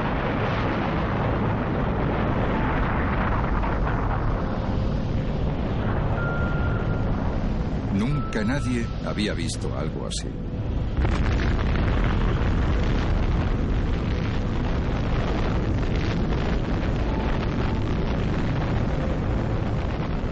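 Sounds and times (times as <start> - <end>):
atomic bomb test explosion roar: 0.0 - 20.3
speech: 8.4 - 11.4.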